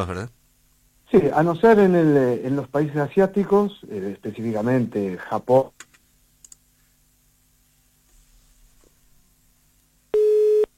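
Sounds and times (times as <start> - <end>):
speech: 0.0 - 0.4, 1.1 - 5.8
busy-signal beep after a dropped phone call: 10.1 - 10.7
quiet phone line noise: 10.1 - 10.7.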